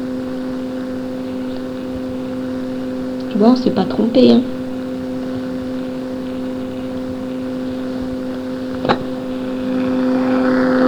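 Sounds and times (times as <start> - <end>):
motor running: 0.0 - 10.8
speech: 3.4 - 4.6.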